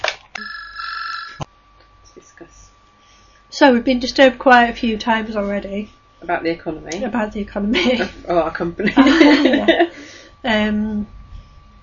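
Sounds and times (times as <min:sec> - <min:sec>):
telephone ringing with electronic trill: 0:00.3 - 0:01.5
speech: 0:03.6 - 0:11.2
laughter: 0:07.7 - 0:08.2, 0:08.8 - 0:09.9.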